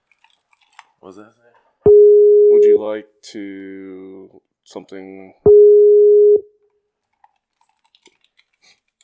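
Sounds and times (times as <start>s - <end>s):
speech: 1.0s - 1.6s, 2.6s - 5.5s
electronic beep tone on a call line: 5.5s - 6.4s.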